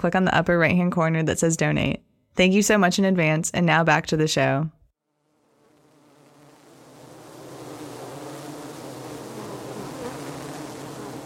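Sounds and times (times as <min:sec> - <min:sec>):
speech: 0:00.0 - 0:04.8
many bees buzzing around beehive boxes in Auburn: 0:05.2 - 0:11.2.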